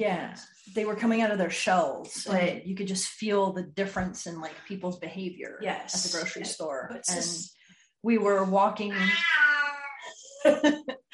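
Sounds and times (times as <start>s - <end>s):
speech: 0.0s - 9.6s, 10.4s - 11.0s
male cat meowing: 8.9s - 10.2s
laughter: 10.2s - 11.1s.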